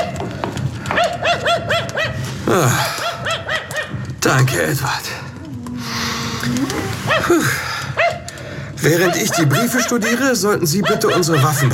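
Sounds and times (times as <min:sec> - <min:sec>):
agitated dog barking: 0:00.8 - 0:04.1, 0:07.0 - 0:11.7
speech: 0:02.5 - 0:02.9, 0:04.3 - 0:05.2, 0:06.5 - 0:07.7, 0:08.8 - 0:11.7.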